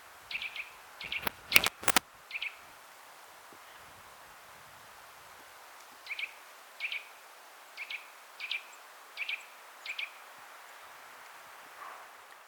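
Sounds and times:
quiet background hiss: 0.0s - 12.4s
Eurasian nuthatch Sitta europaea doubled piping calls: 0.3s - 2.7s, 6.0s - 7.1s, 7.8s - 10.2s.

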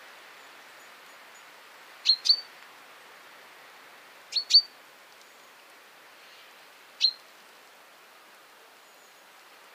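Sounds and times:
faint background hiss: 0.0s - 9.7s
common chaffinch Fringilla coelebs calling: 4.3s - 4.7s.

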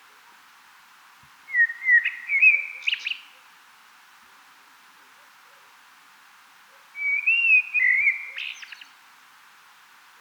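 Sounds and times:
common blackbird Turdus merula singing: 1.5s - 3.2s, 7.0s - 8.8s.

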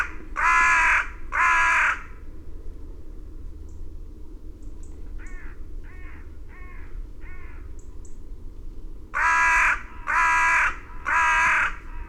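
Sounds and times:
carrion crow giving harsh hoarse caws: 0.0s - 2.1s, 5.2s - 7.7s, 9.2s - 12.0s.

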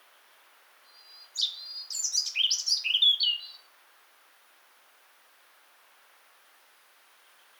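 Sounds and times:
European robin Erithacus rubecula singing: 1.0s - 3.6s.

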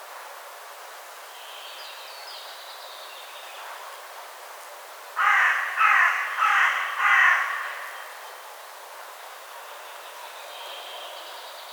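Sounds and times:
carrion crow Corvus corone raspy caws: 5.2s - 8.2s.

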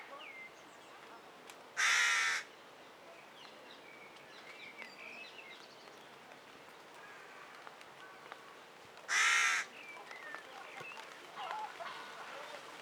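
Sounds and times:
carrion crow cawing: 1.8s - 2.5s, 9.1s - 9.7s.

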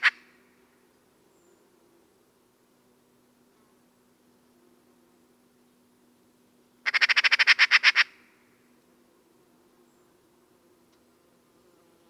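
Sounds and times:
Eurasian magpie Pica pica chatter: 0.0s - 0.2s, 6.9s - 8.2s.

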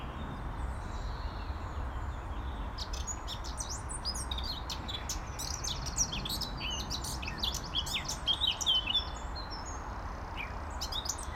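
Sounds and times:
continuous low-pitched background noise: 0.0s - 11.3s
Eurasian blackcap Sylvia atricapilla chirping and warbling: 2.8s - 9.8s, 10.4s - 11.3s.

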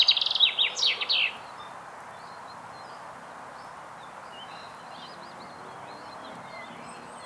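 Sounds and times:
common chaffinch Fringilla coelebs song fragment: 0.0s - 1.5s.

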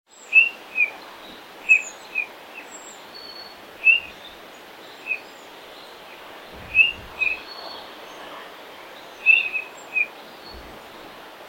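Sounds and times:
steady background hiss: 0.1s - 11.4s
Eurasian bullfinch calls: 0.2s - 7.8s, 9.1s - 10.7s.

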